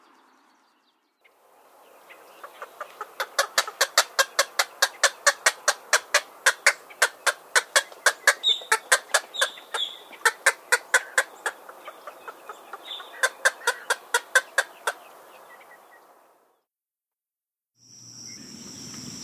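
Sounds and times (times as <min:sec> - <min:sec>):
green heron calling: 0:01.5 - 0:16.3.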